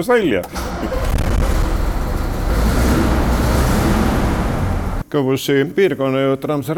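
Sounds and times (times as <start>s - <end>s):
speech: 0.0s - 1.2s, 5.1s - 6.7s
diesel engine of a restored Ikarus 256 bus rumbling: 0.5s - 5.0s.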